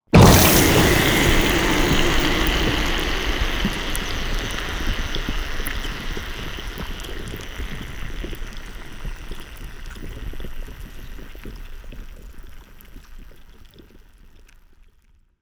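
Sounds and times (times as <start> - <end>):
designed underwater acid soak submersion: 0.0 - 11.5.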